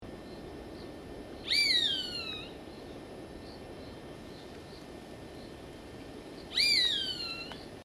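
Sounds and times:
grey buzzard calling: 0:01.4 - 0:02.6, 0:06.5 - 0:07.6.

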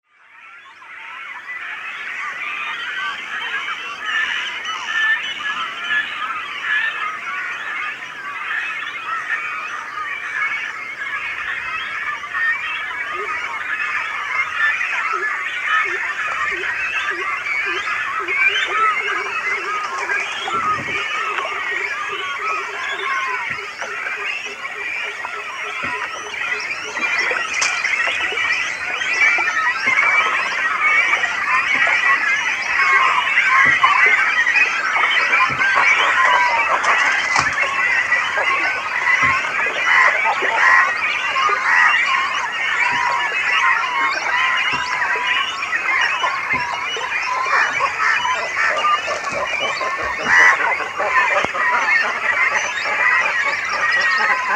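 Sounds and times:
great cormorant calling: 0:00.3 - 0:54.5.

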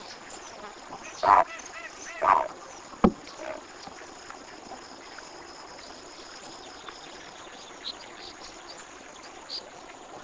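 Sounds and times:
cocoi heron calling: 0:01.1 - 0:02.5.

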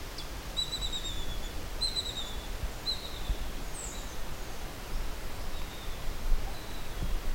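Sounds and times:
bluish kite calling: 0:00.2 - 0:04.2, 0:05.5 - 0:07.2.

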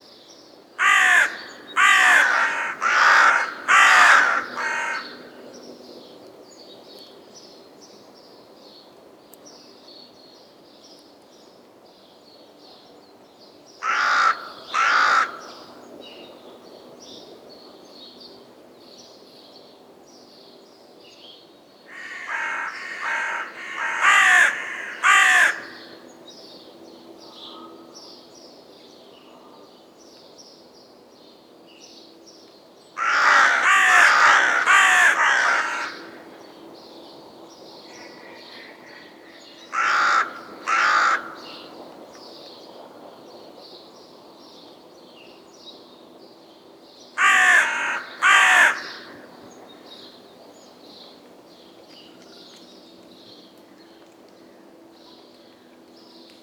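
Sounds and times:
black crow: 0:00.8 - 0:05.4, 0:13.8 - 0:15.8, 0:21.9 - 0:26.1, 0:27.3 - 0:28.0, 0:29.2 - 0:29.8, 0:33.0 - 0:36.5, 0:37.8 - 0:41.8, 0:47.2 - 0:50.1.

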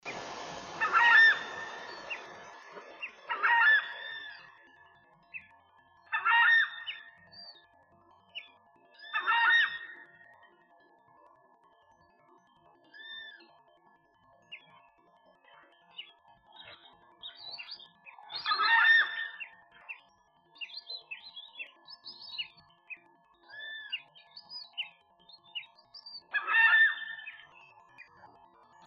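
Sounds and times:
kamichi a collier calling: 0:00.0 - 0:07.6, 0:08.4 - 0:10.3, 0:16.0 - 0:28.8.

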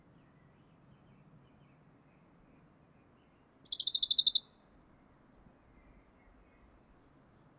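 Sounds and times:
low background noise: 0:00.0 - 0:07.5
Western Bonelli's warbler trilled song: 0:03.6 - 0:04.5.

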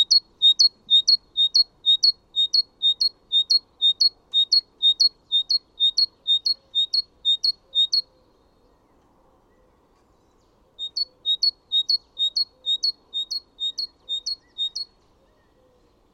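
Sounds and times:
Great tit singing: 0:00.0 - 0:08.1, 0:10.8 - 0:14.9.

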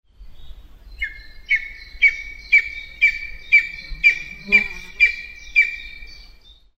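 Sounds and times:
lesser spotted eagle calling: 0:01.0 - 0:06.1.

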